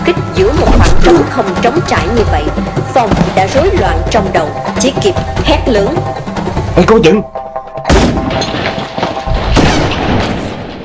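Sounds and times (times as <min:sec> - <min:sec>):
speech: 0:00.1 - 0:07.4
gunshots during an ambush at the edge of a forest: 0:07.9 - 0:10.8.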